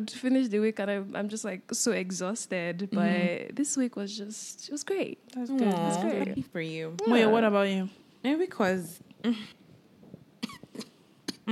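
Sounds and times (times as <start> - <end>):
speech: 0.0 - 9.6
person coughing: 10.4 - 11.5.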